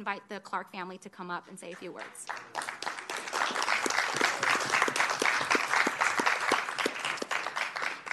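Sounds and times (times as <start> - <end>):
speech: 0.0 - 2.9
sharp individual claps: 1.7 - 8.1
room full of people applauding: 2.2 - 8.1.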